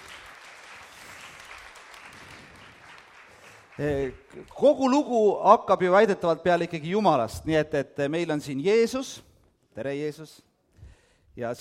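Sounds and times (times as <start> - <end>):
audience applause: 0.0 - 4.4
speech: 3.8 - 10.5, 11.4 - 11.5.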